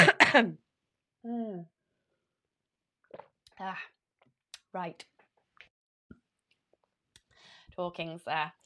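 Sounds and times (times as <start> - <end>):
person coughing: 0.0 - 0.6
raspy throat-clearing grunts: 0.0 - 0.6
speech: 0.4 - 0.6, 1.2 - 1.8, 3.6 - 4.0, 4.7 - 5.1, 7.8 - 8.6.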